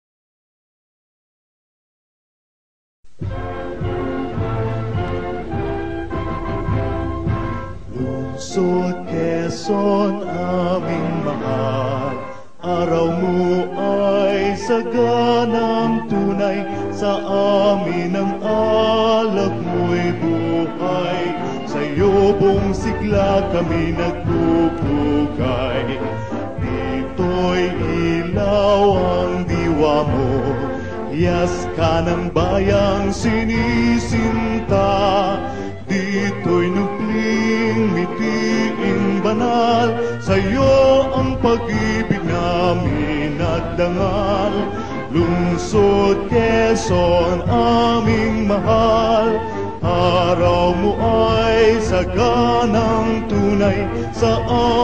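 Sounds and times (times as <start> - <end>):
hymn: 3.2 - 54.8.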